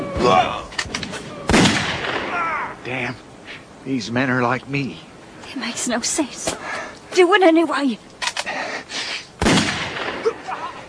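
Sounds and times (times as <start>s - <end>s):
sudden burst of enemy rifle gunfire among boulders: 1.5s - 2.4s, 9.4s - 10.2s
speech: 2.9s - 8.1s.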